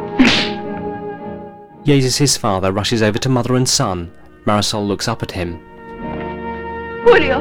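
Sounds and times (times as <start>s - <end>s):
woman slapping a man across the face: 0.1s - 0.9s
speech: 1.8s - 5.7s, 7.0s - 7.3s.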